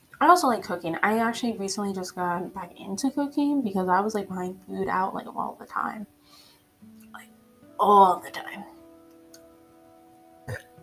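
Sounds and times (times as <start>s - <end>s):
speech: 0.2s - 6.4s, 7.2s - 8.7s
short low burp: 10.4s - 10.8s.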